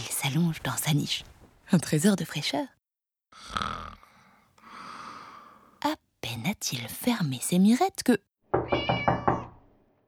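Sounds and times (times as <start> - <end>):
speech: 0.2 - 2.8, 5.8 - 9.0
cat meowing: 8.6 - 9.6.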